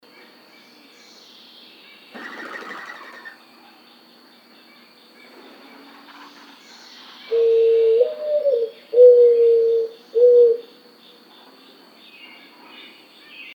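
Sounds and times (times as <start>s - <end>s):
mourning dove cooing: 2.2s - 3.4s, 7.3s - 10.7s.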